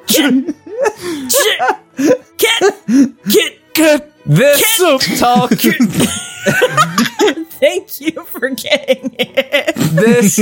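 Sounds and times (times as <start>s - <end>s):
people sneezing: 0.0s - 0.5s, 1.1s - 1.8s
speech: 0.1s - 2.2s, 4.3s - 7.1s, 7.7s - 10.4s
laughter: 0.2s - 2.8s, 5.2s - 7.5s, 8.7s - 10.4s.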